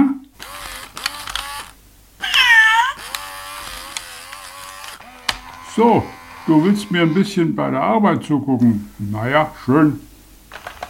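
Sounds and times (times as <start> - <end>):
steady mechanical hum: 0.1 - 10.8
cat meowing: 2.2 - 3.1
speech: 5.8 - 10.1.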